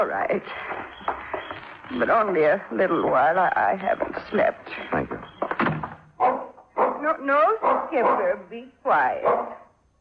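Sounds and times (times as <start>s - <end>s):
speech: 0.0s - 1.2s, 1.9s - 5.1s, 7.0s - 9.5s
old dog barking in whining bursts: 6.2s - 8.4s, 9.2s - 9.7s.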